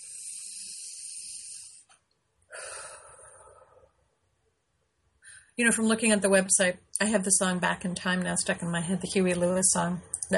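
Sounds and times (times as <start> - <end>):
deep breathing close to the microphone: 0.0 - 1.9, 2.5 - 4.0
speech: 5.6 - 10.3.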